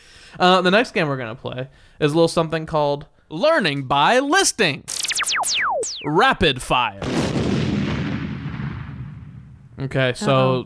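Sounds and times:
speech: 0:00.3 - 0:07.2, 0:09.8 - 0:10.6
deep explosion boom: 0:07.0 - 0:09.6.

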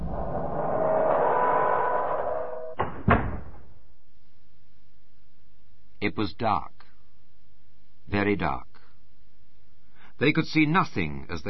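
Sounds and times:
heavy door rumbling and grinding: 0:00.0 - 0:03.5
heavy cell door slamming shut: 0:02.7 - 0:03.6
speech: 0:06.0 - 0:06.8, 0:08.1 - 0:08.7, 0:10.2 - 0:11.4.

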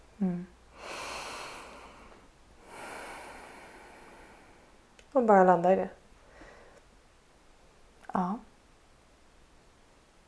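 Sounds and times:
slow deep breaths: 0:00.7 - 0:04.8, 0:06.2 - 0:06.9
speech: 0:05.2 - 0:06.0.

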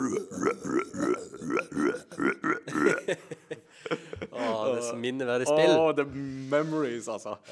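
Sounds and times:
voice imitating a long drawn-out burp: 0:00.0 - 0:03.2
laughter: 0:02.5 - 0:04.8
speech: 0:05.1 - 0:07.5.

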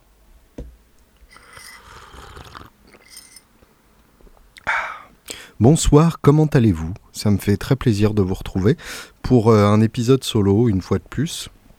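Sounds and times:
slurping hot Indian spiced milk tea: 0:01.3 - 0:03.3
speech: 0:05.6 - 0:11.6.

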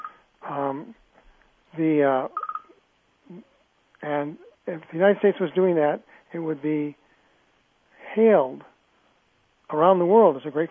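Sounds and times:
electronic mobile phone beeps: 0:00.0 - 0:00.2, 0:02.4 - 0:02.8
speech: 0:00.5 - 0:01.0, 0:01.8 - 0:02.4, 0:03.3 - 0:07.0, 0:08.2 - 0:08.7, 0:09.7 - 0:10.6.

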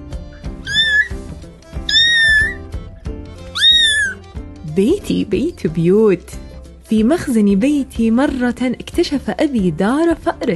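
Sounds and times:
soft steady rhythmic background: 0:00.0 - 0:10.5
cat meowing: 0:00.6 - 0:01.2, 0:01.8 - 0:02.7, 0:03.5 - 0:04.2
speech: 0:04.8 - 0:10.5.

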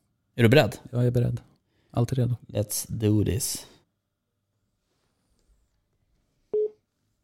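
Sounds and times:
speech: 0:00.4 - 0:03.7
short electronic telephone dialing key beep: 0:06.6 - 0:06.8.

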